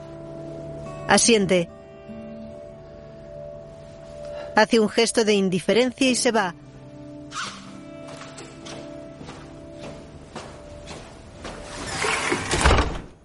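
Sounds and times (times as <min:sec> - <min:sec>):
speech: 0:01.1 - 0:01.8, 0:04.6 - 0:06.6
door sliding and swinging shut with a muffled thud: 0:12.2 - 0:13.2.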